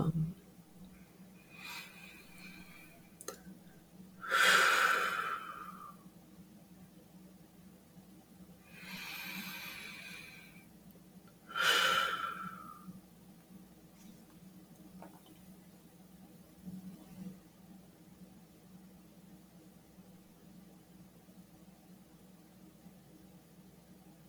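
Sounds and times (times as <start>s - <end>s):
slow deep breathing during a guided relaxation exercise: 1.5s - 3.0s, 4.2s - 6.0s, 8.7s - 10.6s, 11.5s - 12.9s.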